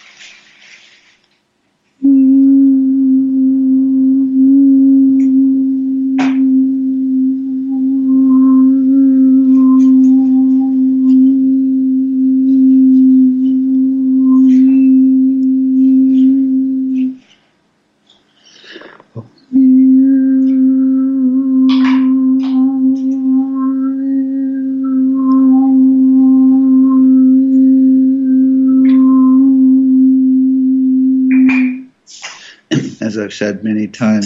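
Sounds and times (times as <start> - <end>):
single voice holding a long steady vowel tone: 2.0 - 17.4, 19.5 - 32.0
breath: 18.3 - 19.0, 32.2 - 32.7
speech: 33.3 - 34.2.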